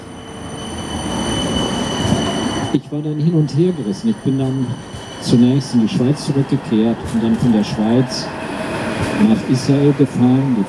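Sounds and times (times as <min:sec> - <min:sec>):
faint high-pitched tram wheel squeal: 0:00.0 - 0:07.5
tram rolling past on rails: 0:00.0 - 0:10.6
speech: 0:02.7 - 0:08.4, 0:09.1 - 0:10.6.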